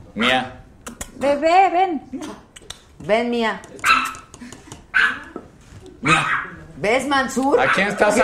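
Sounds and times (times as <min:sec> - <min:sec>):
small dog barking: 0:00.2 - 0:00.5, 0:03.8 - 0:04.3, 0:04.9 - 0:05.4, 0:06.0 - 0:06.6, 0:07.6 - 0:08.1
speech: 0:00.2 - 0:00.6, 0:01.2 - 0:02.4, 0:03.0 - 0:04.1, 0:06.0 - 0:08.2.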